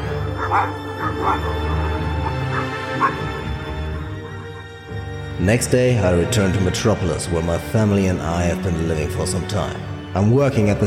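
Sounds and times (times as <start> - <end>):
dog barking and yipping in the distance: 0.2 - 4.8
speech: 0.5 - 1.8, 3.0 - 3.3, 5.4 - 10.8.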